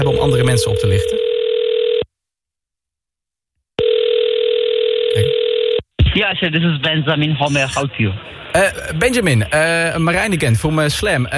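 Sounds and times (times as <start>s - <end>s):
speech: 0.0s - 1.2s, 6.2s - 11.3s
ringback tone of an outgoing telephone call: 0.1s - 2.1s, 3.8s - 5.8s.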